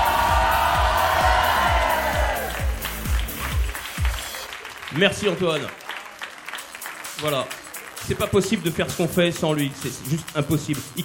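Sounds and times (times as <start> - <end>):
steady thumping beat: 0.0 - 4.5, 7.0 - 11.0
crowd applauding and cheering with whoops: 0.0 - 11.0
speech: 5.0 - 5.8, 7.2 - 11.0.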